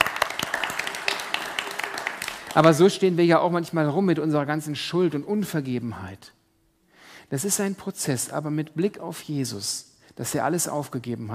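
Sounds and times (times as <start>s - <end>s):
crowd applause: 0.0s - 2.9s
speech: 2.6s - 6.4s, 7.3s - 11.3s.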